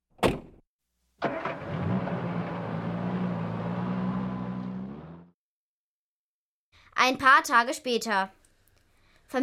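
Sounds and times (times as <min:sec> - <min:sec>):
car door thudding shut: 0:00.2 - 0:00.6
car engine starting and running as the car pulls away: 0:01.2 - 0:05.3
speech: 0:07.0 - 0:08.4.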